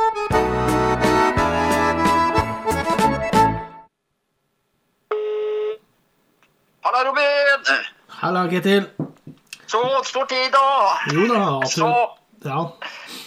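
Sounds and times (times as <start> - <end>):
loud burst of music: 0.0 - 3.9
speech: 7.0 - 9.0, 9.7 - 13.0.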